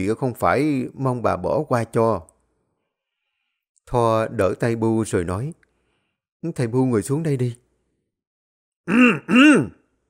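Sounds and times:
speech: 0.0 - 2.3, 3.9 - 5.6, 6.4 - 7.6, 8.8 - 9.8
older woman clearing her throat: 8.9 - 9.8.

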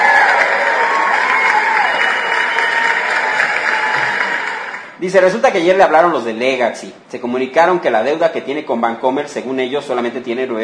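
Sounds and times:
crowd clapping: 0.0 - 5.0
speech: 5.0 - 10.6.

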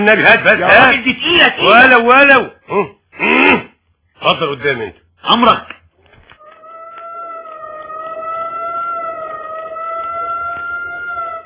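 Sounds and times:
speech: 0.0 - 3.4, 4.2 - 5.8
police car siren: 6.4 - 11.4.

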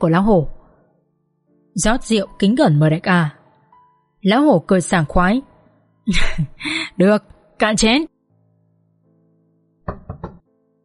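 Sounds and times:
speech: 0.0 - 0.6, 1.8 - 3.4, 4.2 - 5.5, 6.1 - 8.1
knocks on a door: 9.9 - 10.5.

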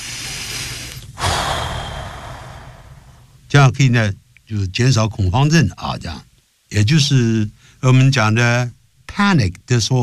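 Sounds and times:
deep controlled abdominal breathing: 0.0 - 3.4
steady noise: 0.0 - 10.0
speech: 3.7 - 10.0.

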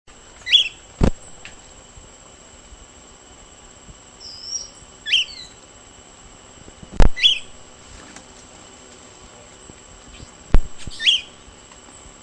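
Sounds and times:
faint high hum: 0.1 - 12.2
Short-crested flycatcher Myiarchus ferox giving bright whistled calls: 0.4 - 1.4, 4.2 - 5.7, 7.0 - 7.6, 10.1 - 11.5.

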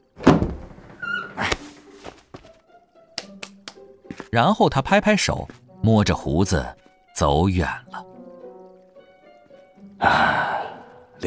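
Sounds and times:
sharp taps and thunks of wood: 0.2 - 0.8
door being pushed open in an old palace garden pavilion: 0.2 - 1.5
faint creak-like tone: 0.8 - 1.5
speech: 4.3 - 7.8.

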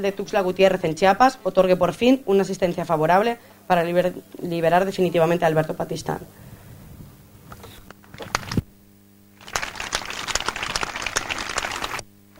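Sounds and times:
speech: 0.0 - 6.4
crowd applauding in a prison courtyard during a support march: 9.4 - 12.3.

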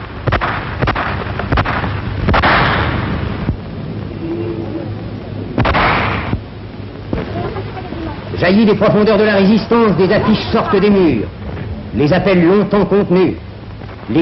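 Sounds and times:
dense continuous rumbling noise: 0.0 - 14.2
gunfire in Paris during the August 1944 liberation: 0.2 - 3.5, 5.6 - 6.4
speech: 8.4 - 13.4.

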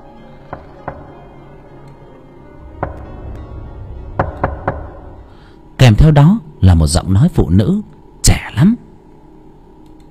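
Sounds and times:
low steady hum: 0.0 - 10.0
hollow raps knocking on a door: 0.5 - 1.2, 2.7 - 5.3
speech: 5.9 - 8.8.

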